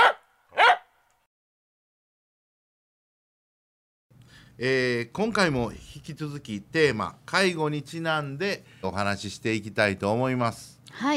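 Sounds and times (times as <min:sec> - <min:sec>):
dog barking: 0:00.0 - 0:00.9
speech: 0:04.6 - 0:11.1.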